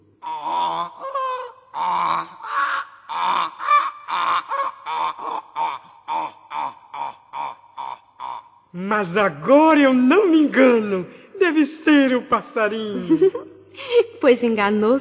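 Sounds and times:
donkey braying: 0.0 - 9.2
speech: 8.8 - 13.5, 14.2 - 14.9
laughter: 11.4 - 13.5.

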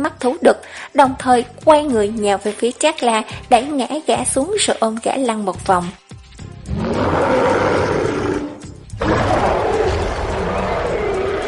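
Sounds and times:
speech: 0.0 - 6.0
male wild beast roaring in pain: 6.7 - 11.4.

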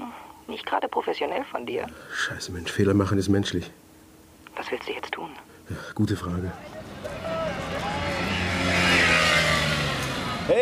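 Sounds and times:
speech: 0.5 - 3.8, 4.6 - 7.3
car driving up with a low engine rumble: 6.5 - 10.5.

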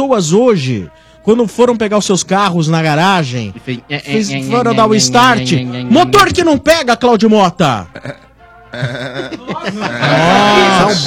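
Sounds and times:
speech: 0.0 - 11.0
laughter: 4.1 - 6.5, 7.9 - 11.0
billy goat bleating: 4.1 - 6.6.

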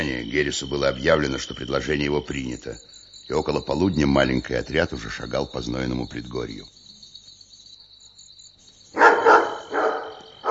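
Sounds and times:
speech: 0.0 - 6.8
angry dog barking: 9.0 - 10.4.

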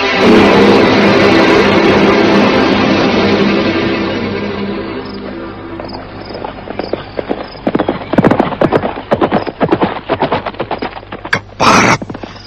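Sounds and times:
broad rushing noise: 0.1 - 12.4
horses galloping: 5.2 - 12.4.

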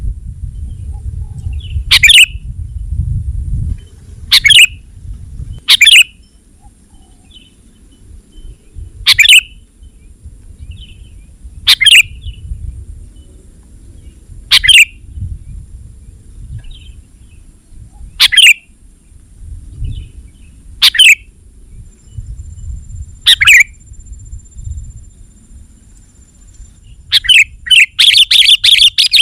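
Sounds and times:
soft low rumble: 0.0 - 18.2, 18.8 - 27.1
sooty-headed bulbul calls: 0.9 - 2.4, 4.3 - 4.8, 5.6 - 10.1, 10.7 - 12.5, 14.0 - 15.2, 16.6 - 18.7, 19.9 - 21.3, 23.2 - 23.8, 26.8 - 29.2.

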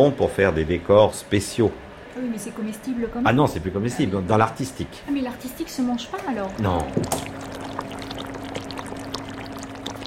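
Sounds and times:
speech: 0.0 - 7.4
steady low hum: 0.0 - 10.0
boiling sugar syrup bubbling and thickening: 5.5 - 10.0.

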